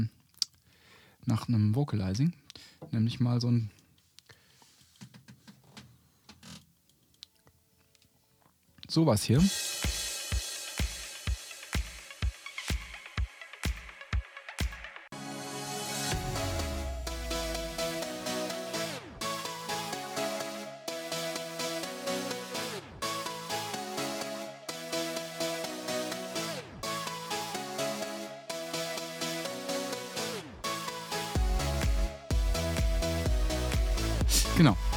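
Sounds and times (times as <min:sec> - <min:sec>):
speech: 0:01.2 - 0:03.8, 0:08.9 - 0:09.7
upbeat instrumental electronic dance track with synth melody and punchy beat: 0:09.4 - 0:34.9.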